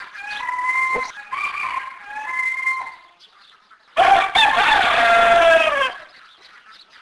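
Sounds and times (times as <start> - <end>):
rooster: 0.1 - 3.2, 4.0 - 6.2.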